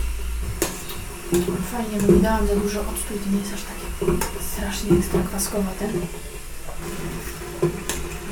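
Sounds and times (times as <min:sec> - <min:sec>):
water boiling in a pot on a small burner: 0:00.0 - 0:08.3
speech: 0:01.3 - 0:07.3.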